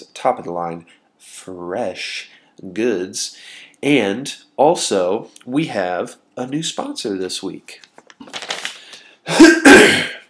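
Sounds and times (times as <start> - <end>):
speech: 0.2 - 8.4
man clearing his throat: 9.3 - 10.2.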